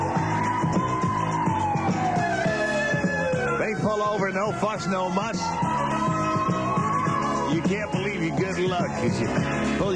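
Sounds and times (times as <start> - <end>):
driving rhythmic backing with thumping beats: 0.0 - 9.9
police squad car siren wailing during pursuit: 0.0 - 9.9
speech: 4.3 - 6.2, 7.7 - 9.9.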